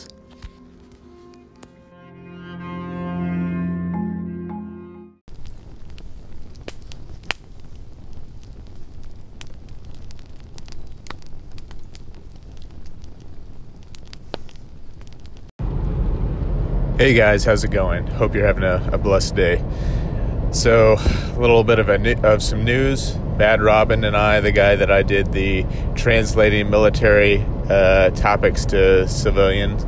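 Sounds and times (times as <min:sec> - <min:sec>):
low sustained tonal music: 0:00.0 - 0:05.2
campfire crackling with pops and snaps: 0:05.3 - 0:15.5, 0:16.4 - 0:29.8
speech: 0:17.0 - 0:29.8.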